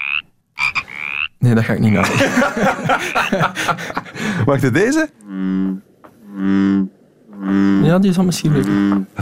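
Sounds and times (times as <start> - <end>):
deep droning bullfrog calls: 0.0 - 2.0, 5.2 - 9.1
speech: 1.4 - 5.8, 6.4 - 6.9, 7.5 - 9.2
laughter: 2.0 - 4.6.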